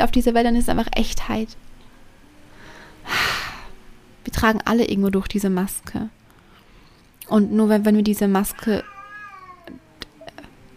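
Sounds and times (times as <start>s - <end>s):
speech: 0.0s - 1.7s, 4.2s - 6.2s, 7.3s - 8.9s
cat yowling: 8.5s - 10.0s
cats hissing: 8.7s - 10.0s.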